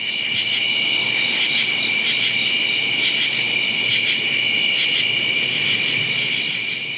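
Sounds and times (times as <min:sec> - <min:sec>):
many thousands of crickets trilling on the ground: 0:00.0 - 0:06.9
true katydids rasping in trees: 0:01.1 - 0:04.3.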